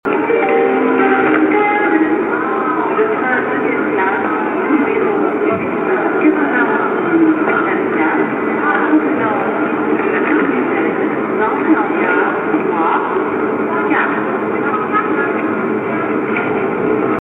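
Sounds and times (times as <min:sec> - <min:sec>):
train station ambience: 0:00.0 - 0:17.2
SNCF station chime jingle: 0:00.2 - 0:02.2.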